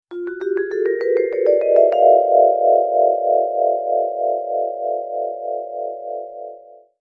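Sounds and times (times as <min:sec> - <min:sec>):
dreamy vibraphone accent: 0:00.1 - 0:03.8.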